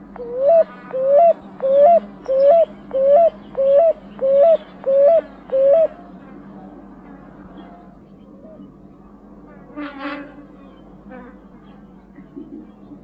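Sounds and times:
Picui ground dove (Columbina picui) cooing in Bahía Blanca: 0:00.0 - 0:06.0.

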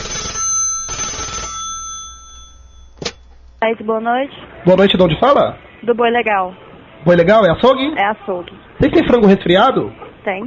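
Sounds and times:
telephone ringing on an outgoing call to a butcher shop: 0:00.0 - 0:03.6
speech: 0:03.6 - 0:10.4.

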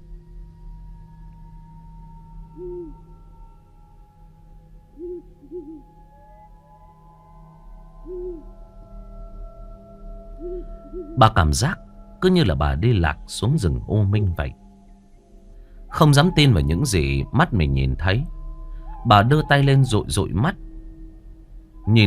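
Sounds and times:
owl hooting far away in a forest: 0:02.4 - 0:03.2, 0:04.9 - 0:06.9, 0:07.7 - 0:08.8, 0:10.3 - 0:14.7, 0:15.8 - 0:22.0
speech: 0:11.2 - 0:14.6, 0:15.9 - 0:18.4, 0:19.0 - 0:20.6, 0:21.8 - 0:22.0.

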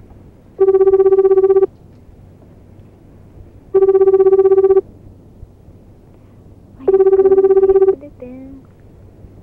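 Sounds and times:
ringback tone of an outgoing telephone call to a home in Aomori Prefecture: 0:00.6 - 0:01.7, 0:03.8 - 0:04.8, 0:06.8 - 0:08.0.

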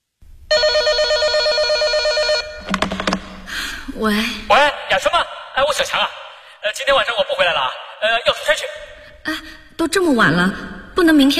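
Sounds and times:
telephone ringing electronic trill: 0:00.5 - 0:03.2
telephone receiver being handled with clicks and clatter: 0:02.7 - 0:03.2
speech: 0:04.0 - 0:11.3.

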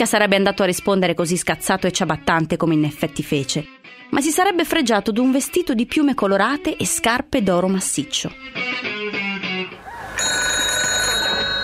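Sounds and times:
speech: 0:00.0 - 0:09.0
telephone ringing: 0:10.2 - 0:11.6.

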